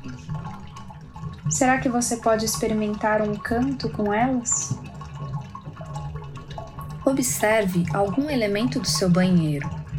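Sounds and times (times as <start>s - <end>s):
low constant hum of bathroom plumbing: 0.0s - 9.9s
water running through bathroom plumbing pipes: 0.0s - 9.9s
speech: 1.5s - 4.8s, 7.1s - 9.8s.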